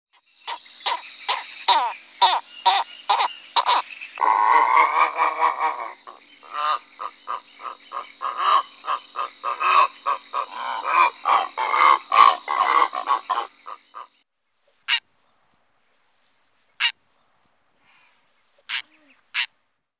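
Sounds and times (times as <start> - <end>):
purple heron harsh grating croaks: 0.5 - 14.1.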